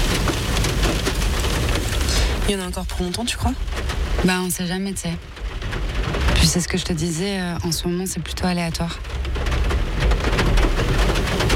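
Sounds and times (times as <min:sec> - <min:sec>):
steady rain pouring down: 0:00.0 - 0:11.5
speech: 0:02.5 - 0:05.8, 0:06.4 - 0:09.5.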